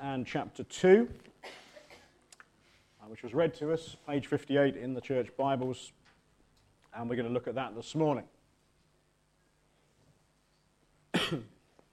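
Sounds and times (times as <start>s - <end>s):
speech: 0.2s - 1.6s, 3.1s - 6.0s, 6.9s - 8.4s, 11.3s - 11.5s
harsh cough: 1.4s - 2.2s, 11.1s - 11.6s
throat clearing: 1.4s - 2.2s, 11.1s - 11.6s.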